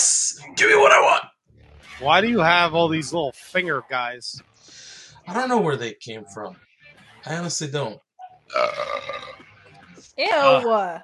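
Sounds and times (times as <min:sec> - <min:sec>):
speech: 0:00.4 - 0:01.3, 0:02.0 - 0:04.5, 0:05.3 - 0:09.4, 0:10.2 - 0:11.0
long loud burp: 0:08.5 - 0:09.4.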